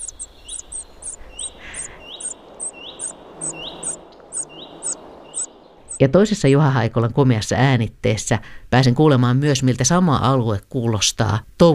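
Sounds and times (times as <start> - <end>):
common cuckoo chick begging in a common redstart's nest: 0.0 - 6.0
speech: 6.0 - 11.7.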